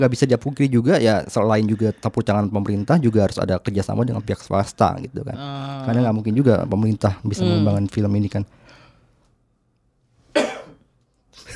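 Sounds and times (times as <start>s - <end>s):
speech: 0.0s - 8.6s
person coughing: 10.3s - 10.9s.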